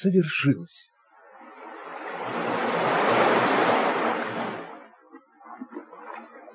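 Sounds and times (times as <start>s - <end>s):
speech: 0.0s - 0.9s
sea wave crashing on the shore: 1.2s - 4.9s
receding water fizzing and bubbling: 1.2s - 6.5s.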